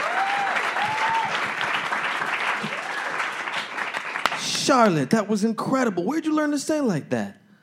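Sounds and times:
crowd whistles and cheers: 0.0 - 1.7, 2.6 - 3.4
crowd applauding: 0.0 - 5.0
speech: 4.7 - 7.4.

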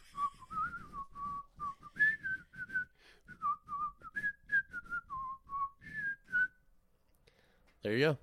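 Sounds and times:
soft breathy puffs: 0.0 - 4.2
person whistling a lively melody: 0.0 - 6.7
speech: 7.8 - 8.2.

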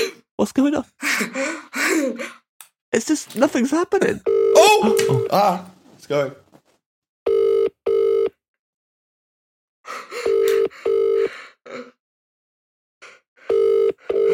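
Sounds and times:
speech: 0.4 - 6.4
telephone ringing tone in double-pulse bursts: 4.3 - 5.4, 7.3 - 8.3, 10.2 - 11.3, 13.5 - 14.3.

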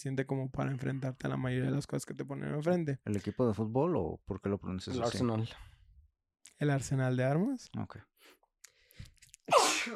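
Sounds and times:
speech: 0.0 - 5.8, 6.6 - 8.4, 9.5 - 9.9
person sneezing: 9.5 - 9.9.

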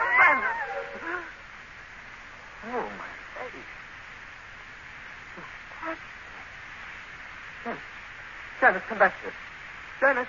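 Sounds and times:
cat yowling: 0.0 - 1.4
speech: 5.4 - 6.1, 8.6 - 10.2.

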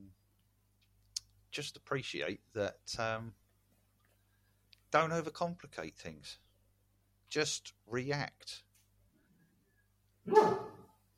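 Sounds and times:
speech: 1.6 - 3.4, 4.9 - 6.4, 7.3 - 8.7
person imitating a dog bark: 10.3 - 10.9.

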